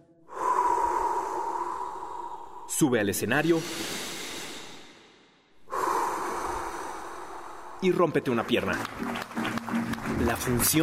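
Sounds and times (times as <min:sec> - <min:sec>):
deep breath inhale: 0:00.2 - 0:02.8, 0:03.4 - 0:07.8
speech: 0:02.7 - 0:04.1, 0:07.8 - 0:10.8.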